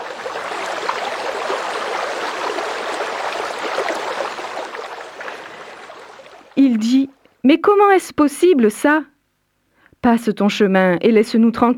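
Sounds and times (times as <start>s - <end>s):
water trickling down from one mountain to another: 0.0s - 7.2s
speech: 6.6s - 9.1s, 10.0s - 11.7s.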